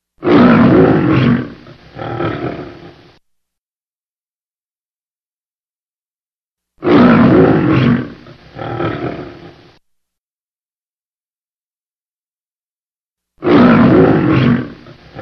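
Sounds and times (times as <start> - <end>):
lion roaring: 0.2 - 3.1, 6.8 - 9.7, 13.4 - 15.1.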